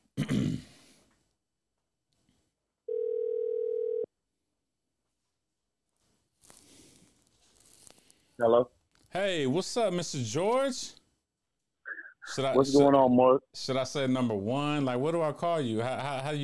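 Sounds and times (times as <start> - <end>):
telephone dial tone while placing a call: 2.9 - 4.1
rustling handling noise: 5.9 - 9.2
speech: 8.4 - 11.0, 12.3 - 16.4.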